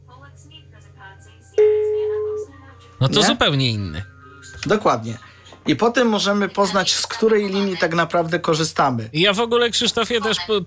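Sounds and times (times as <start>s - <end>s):
faint low hum: 0.0s - 10.6s
steady electronic phone ringing tone: 1.6s - 3.4s
speech: 3.0s - 10.6s.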